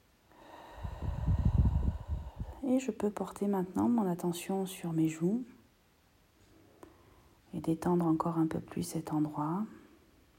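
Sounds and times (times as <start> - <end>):
deep breath drawn in during a guided relaxation exercise: 0.3 - 2.6
speech: 2.7 - 5.6, 7.6 - 9.8.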